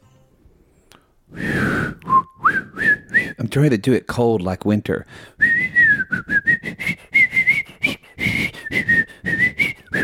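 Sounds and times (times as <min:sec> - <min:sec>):
short breaths: 0:00.8 - 0:03.4, 0:05.0 - 0:05.8, 0:06.6 - 0:10.0
person whistling a melody: 0:01.3 - 0:03.4, 0:05.4 - 0:10.0
speech: 0:03.6 - 0:05.3.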